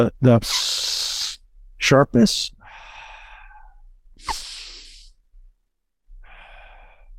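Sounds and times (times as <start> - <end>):
speech: 0.0 - 0.9, 1.8 - 2.6
forceful noisy breaths drawn in: 0.5 - 1.4, 2.6 - 5.2, 6.2 - 7.1.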